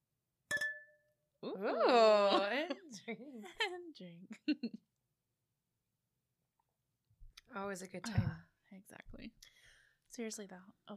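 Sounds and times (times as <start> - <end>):
glasses clinking together in a toast: 0.5 - 1.1
speech: 1.5 - 4.9, 7.5 - 10.9.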